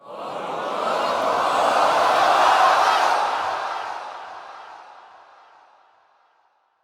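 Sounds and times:
excited crowd: 0.0s - 5.6s.

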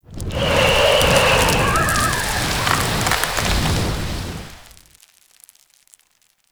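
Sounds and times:
wind-blown debris: 0.0s - 5.0s.

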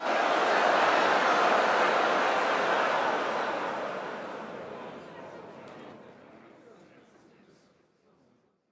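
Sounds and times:
excited crowd: 0.0s - 5.3s.

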